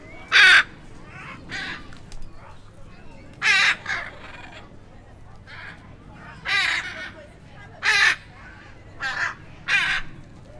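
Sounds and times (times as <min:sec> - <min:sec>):
Anodorhynchus hyacinthinus hyacinth macaws in neighboring enclosures calling to each other: 0:00.1 - 0:02.0, 0:03.4 - 0:04.7, 0:05.5 - 0:07.2, 0:07.8 - 0:10.3.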